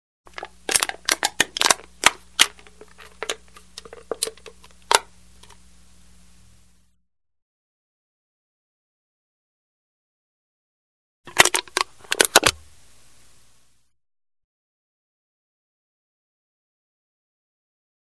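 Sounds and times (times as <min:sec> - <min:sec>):
aluminum can being crushed: 0:00.3 - 0:05.6, 0:11.3 - 0:12.6.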